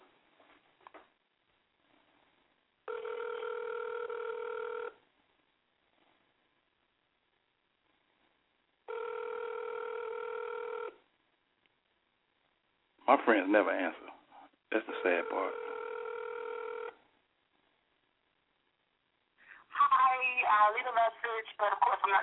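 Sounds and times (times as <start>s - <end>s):
faint hiss: 0.0s - 15.8s, 16.4s - 22.2s
telephone ringback tone on the line: 2.9s - 5.0s, 8.9s - 11.0s, 14.9s - 17.0s
speech: 13.1s - 14.1s, 14.8s - 15.7s, 21.0s - 22.2s.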